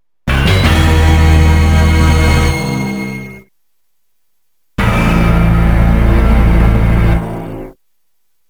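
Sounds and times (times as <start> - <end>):
game music: 0.3 - 3.4, 4.8 - 7.7.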